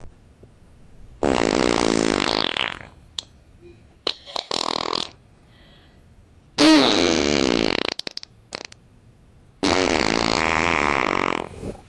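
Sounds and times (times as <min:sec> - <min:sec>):
huge fart: 0:01.2 - 0:03.0, 0:04.1 - 0:05.2, 0:06.6 - 0:08.8, 0:09.6 - 0:11.8.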